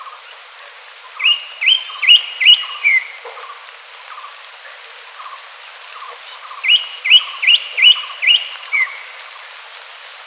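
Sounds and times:
greater green leafbird whistled song: 0:01.2 - 0:03.2, 0:06.3 - 0:09.1.

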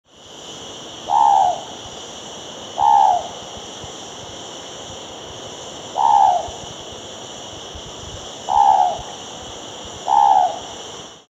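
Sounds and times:
Ninox affinis calling: 0:01.0 - 0:01.8, 0:02.7 - 0:03.4, 0:05.9 - 0:06.6, 0:08.4 - 0:09.2, 0:10.0 - 0:10.8.

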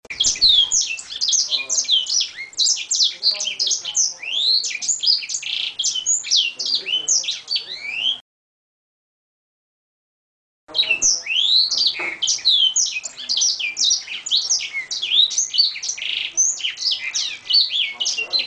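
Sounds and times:
Edel Sanger singing high chirps and swooping whistles: 0:00.1 - 0:08.2, 0:10.7 - 0:18.4.

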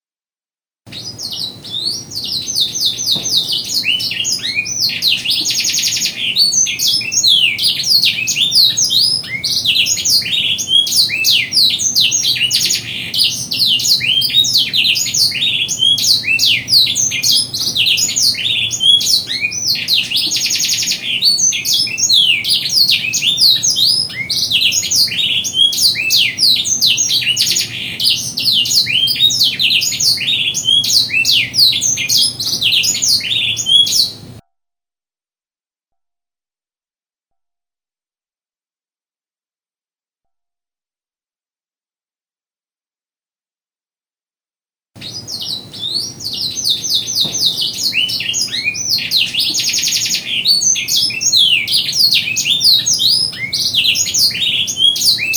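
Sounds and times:
canary singing: 0:00.9 - 0:34.4, 0:45.0 - 0:55.3.

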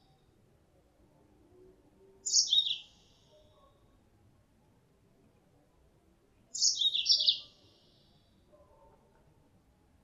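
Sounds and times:
female Mozambique canary chirping lure call: 0:02.3 - 0:02.8.

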